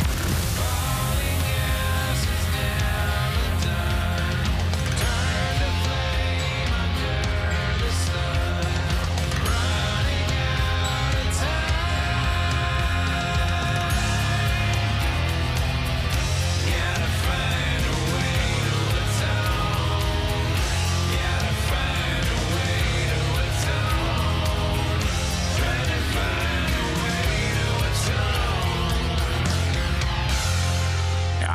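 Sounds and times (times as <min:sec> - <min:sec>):
full-band rock song with driving bass, drums and dense guitars: 0:00.0 - 0:31.5.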